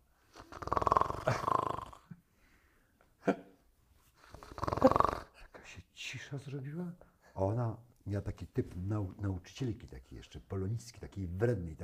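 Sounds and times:
voice imitating a person snoring loudly at a theatre dress rehearsal: 0:00.4 - 0:02.1, 0:04.3 - 0:05.3
speech: 0:06.1 - 0:11.8.

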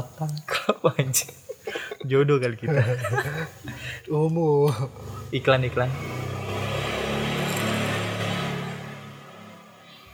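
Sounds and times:
speech: 0:00.2 - 0:06.2
laughter: 0:00.5 - 0:03.9
motorcycle engine revving outside: 0:04.7 - 0:09.9.

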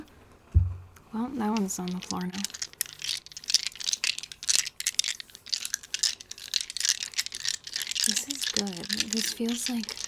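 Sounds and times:
speech: 0:01.1 - 0:02.6, 0:08.1 - 0:10.0
dice rattling and spilling out of a bag: 0:01.4 - 0:10.0.

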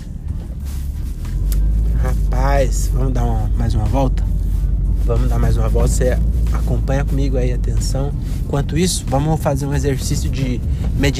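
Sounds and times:
bus engine rumbling: 0:00.0 - 0:11.1
speech: 0:02.6 - 0:04.3, 0:05.1 - 0:11.1.

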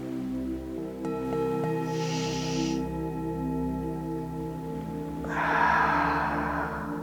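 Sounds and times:
steady sustained music: 0:00.0 - 0:07.0
slow deep breathing in a guided relaxation exercise: 0:01.8 - 0:02.9, 0:05.0 - 0:07.0.

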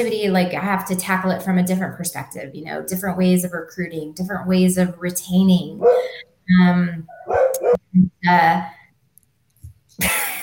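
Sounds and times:
speech: 0:00.0 - 0:08.8
dog barking: 0:05.8 - 0:06.2, 0:07.1 - 0:07.8.

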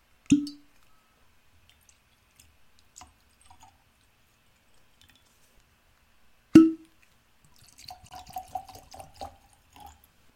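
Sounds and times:
high-proof Colorado bourbon whiskey poured into glasses: 0:07.5 - 0:10.1.

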